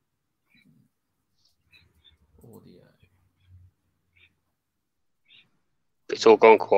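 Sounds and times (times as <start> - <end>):
budgie chirping: 0.4 - 4.5, 5.1 - 5.8
speech: 6.2 - 6.7.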